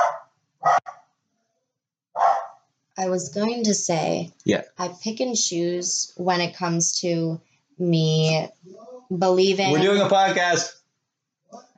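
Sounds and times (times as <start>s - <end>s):
dog barking: 0.0s - 1.0s, 2.2s - 2.6s
speech: 3.0s - 10.8s, 11.5s - 11.7s
laughter: 9.6s - 10.7s.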